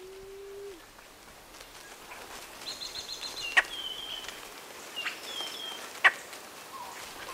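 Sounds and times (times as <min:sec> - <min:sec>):
Blue-headed quail-dove Starnoenas cyanocephala cooing in Cuba: 0:00.0 - 0:00.9, 0:07.2 - 0:07.3
quiet forest ambience in Cuba: 0:00.0 - 0:07.3.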